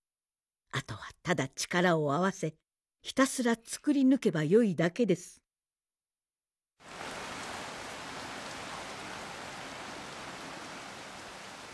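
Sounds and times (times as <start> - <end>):
speech: 0.8 - 5.4
steady rain falling: 6.8 - 11.7.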